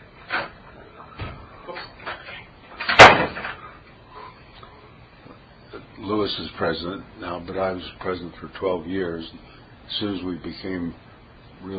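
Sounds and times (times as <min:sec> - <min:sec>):
office door bang: 0:02.8 - 0:03.6
speech: 0:06.1 - 0:11.0, 0:11.6 - 0:11.7.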